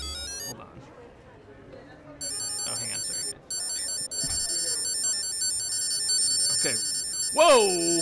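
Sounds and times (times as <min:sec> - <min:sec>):
phone electronic chime as it powers on: 0:00.0 - 0:00.5, 0:02.2 - 0:08.0
speech: 0:07.4 - 0:08.0.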